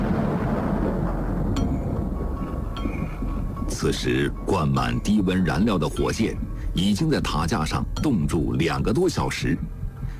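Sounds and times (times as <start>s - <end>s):
thunderstorm thunder rumbling: 0.0s - 4.8s
speech: 3.8s - 9.8s.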